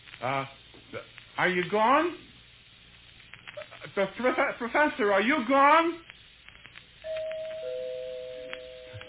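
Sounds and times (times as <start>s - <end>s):
faint noise: 0.0s - 9.0s
speech: 0.2s - 2.3s, 4.0s - 6.1s
two-tone doorbell chime: 7.1s - 9.0s.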